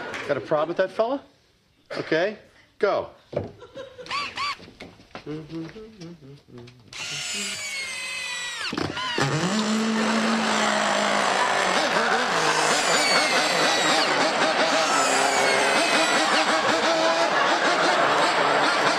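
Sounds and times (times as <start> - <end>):
speech: 0.3 - 3.8, 5.3 - 7.7, 8.7 - 10.1
gas-engine powered screwdriver revving: 7.0 - 17.0
snickering laughter: 11.3 - 18.9.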